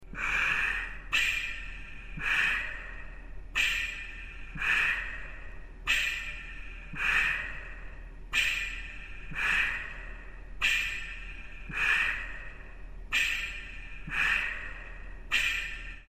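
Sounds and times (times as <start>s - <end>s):
respirator pump: 0.0s - 16.0s.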